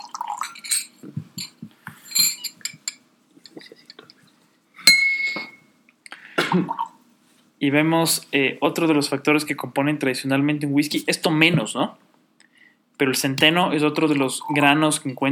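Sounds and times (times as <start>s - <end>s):
water poured to rinse drinking glasses: 0.0s - 1.0s
light clinks of drinking glasses: 0.0s - 4.0s, 4.8s - 5.7s
speech: 6.5s - 6.8s, 7.6s - 12.0s, 13.0s - 15.3s.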